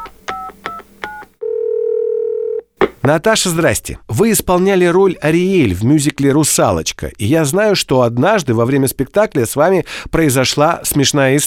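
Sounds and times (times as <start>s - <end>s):
electronic keypad beeps of a phone being dialed: 0.0s - 1.4s
brief click on the phone line: 0.0s - 1.7s
long steady ringing tone on the phone line: 0.0s - 3.0s
speech: 3.1s - 11.4s.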